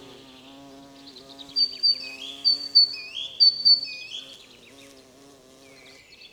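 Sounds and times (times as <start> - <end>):
great tit Parus major giving two-part phrases: 0.0 - 4.3.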